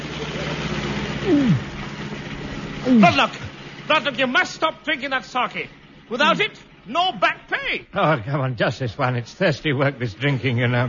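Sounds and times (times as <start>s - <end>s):
brief whine sliding downward in pitch: 0.0s - 8.0s
heavy lorry engines rumbling at a low idle: 0.0s - 10.8s
speech: 2.8s - 10.8s.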